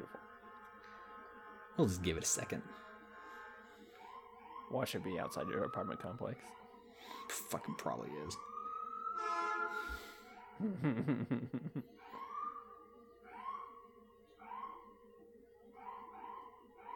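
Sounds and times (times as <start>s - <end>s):
harsh blaring horn-like tones: 0.0s - 10.5s
emergency vehicle siren wailing outside: 0.0s - 10.7s, 12.0s - 15.0s, 15.8s - 16.9s
speech: 1.8s - 2.9s, 4.7s - 8.5s, 10.6s - 12.2s
laughter: 10.6s - 12.0s.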